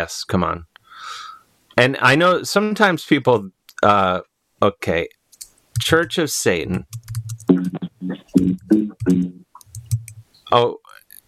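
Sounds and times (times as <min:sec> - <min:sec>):
speech: 0:00.0 - 0:01.2, 0:01.8 - 0:05.2, 0:05.8 - 0:07.0, 0:08.4 - 0:09.2, 0:10.5 - 0:10.8
typing on a computer keyboard: 0:05.4 - 0:06.2, 0:06.8 - 0:07.7, 0:08.6 - 0:10.2.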